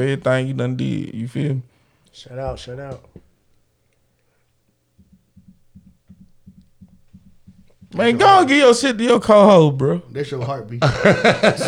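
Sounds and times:
speech: 0.0s - 3.2s, 7.9s - 11.6s
faint hum: 0.0s - 11.6s
heartbeat thumping: 4.9s - 8.6s
laughter: 10.4s - 11.6s.

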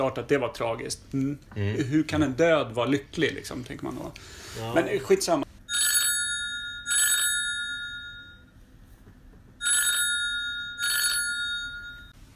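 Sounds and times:
speech: 0.0s - 5.4s
telephone ringing with a bright metallic trill: 5.7s - 8.6s, 9.6s - 12.2s.

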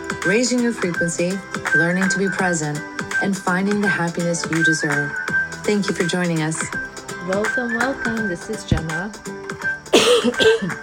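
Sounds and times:
speech: 0.2s - 10.8s
person coughing with a throaty clearing quality: 9.9s - 10.8s.

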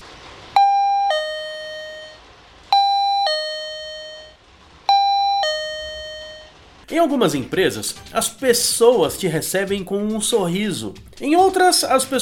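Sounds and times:
shop entrance two-tone doorbell chime: 0.6s - 6.6s
speech: 6.9s - 12.2s.

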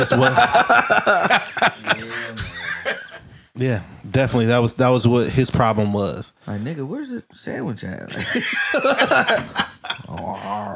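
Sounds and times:
speech: 0.0s - 2.1s, 3.6s - 10.7s
laughter: 0.0s - 3.2s, 8.1s - 10.7s
person imitating a dog with throaty growls and yelps: 10.1s - 10.7s.

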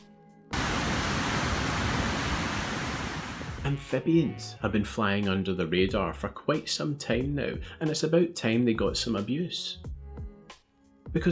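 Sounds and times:
shower water spraying: 0.6s - 3.6s
speech: 3.6s - 10.0s, 11.1s - 11.3s.

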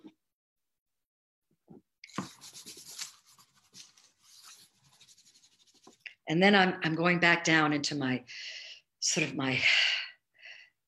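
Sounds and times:
pencil or marker scratching across paper: 2.1s - 6.0s
speech: 6.3s - 9.8s.

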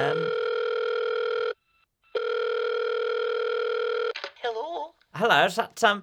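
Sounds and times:
speech: 0.0s - 0.4s, 5.2s - 6.0s
telephone ringback tone heard from the caller's end: 0.0s - 4.1s.

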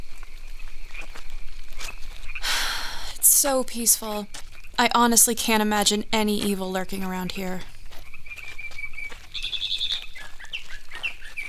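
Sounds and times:
steady hiss: 0.0s - 7.9s
speech: 3.4s - 7.7s
mockingbird calling in high chirping phrases and trills: 9.4s - 11.4s.

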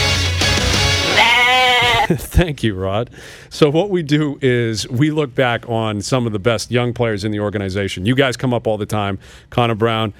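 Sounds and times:
goat bleat sound effect: 1.0s - 2.1s
speech: 2.1s - 10.1s.

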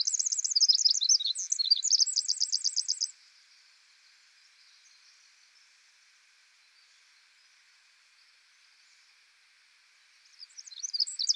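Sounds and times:
Pacific wren singing: 0.0s - 3.1s, 10.4s - 11.3s.

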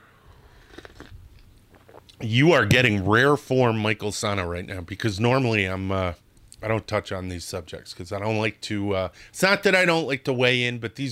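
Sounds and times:
person sipping a drink: 0.0s - 2.2s
slurping and swallowing clicks: 0.5s - 2.2s
speech: 2.2s - 11.1s.

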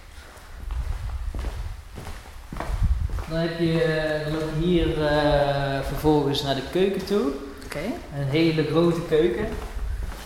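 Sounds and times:
footsteps walking through a house on the floor: 0.0s - 5.3s, 9.4s - 10.2s
speech: 3.3s - 9.7s.

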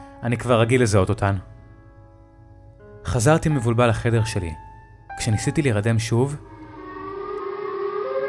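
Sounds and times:
speech: 0.2s - 1.5s, 3.1s - 4.6s, 5.2s - 6.5s
distorted civil defense warning siren wailing: 6.4s - 8.2s.

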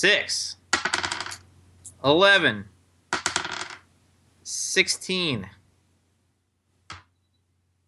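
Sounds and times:
speech: 0.0s - 0.6s, 2.0s - 2.7s, 4.5s - 5.6s
three six-sided dice rolling on a hard table: 0.7s - 1.4s, 3.1s - 3.9s.

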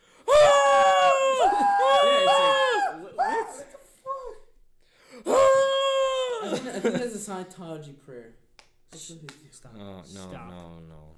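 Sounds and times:
person screaming: 0.3s - 4.4s, 5.2s - 6.6s
laughter: 6.2s - 7.2s
speech: 7.3s - 11.1s.

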